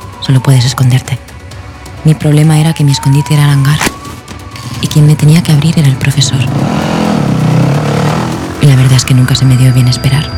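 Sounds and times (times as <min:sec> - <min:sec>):
speech: 0:00.3 - 0:01.3, 0:02.0 - 0:04.0, 0:04.8 - 0:07.0, 0:08.7 - 0:10.3
motorcycle engine revving: 0:06.1 - 0:09.3.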